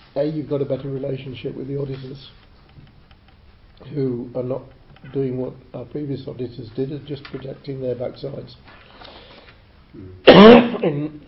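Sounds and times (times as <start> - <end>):
speech: 0.2 - 2.9, 3.8 - 9.1, 9.9 - 11.2
loud rough chesty cough: 10.3 - 11.1.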